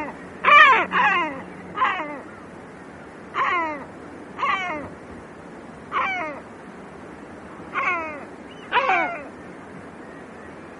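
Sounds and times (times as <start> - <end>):
great black-backed gull giving hoarse mewing calls: 0.0 - 2.5, 3.3 - 5.0, 5.9 - 6.5, 7.7 - 9.4.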